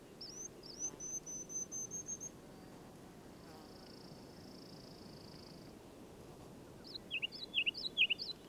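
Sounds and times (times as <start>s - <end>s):
Ruby-crowned Kinglet Regulus calendula giving high thin trills and chirping bursts: 0.2s - 2.3s, 6.9s - 8.4s.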